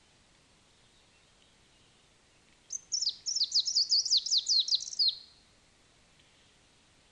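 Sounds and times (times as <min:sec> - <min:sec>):
greenish warbler subspecies viridanus song: 0:00.0 - 0:05.6.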